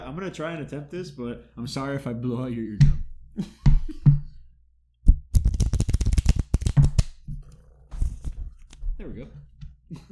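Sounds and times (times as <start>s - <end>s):
speech: 0.1s - 4.0s, 9.0s - 10.1s
playing cards being shuffled with riffling clicks: 5.4s - 7.2s, 8.0s - 8.8s.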